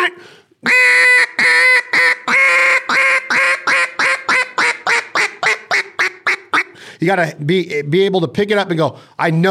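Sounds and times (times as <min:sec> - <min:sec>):
duck call blown giving raspy quacks: 0:00.0 - 0:06.8
speech: 0:07.0 - 0:09.5.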